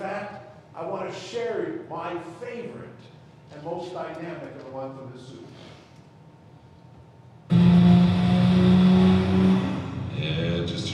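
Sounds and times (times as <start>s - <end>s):
speech: 0.8s - 5.8s
car engine revving in a TV commercial: 7.5s - 10.9s.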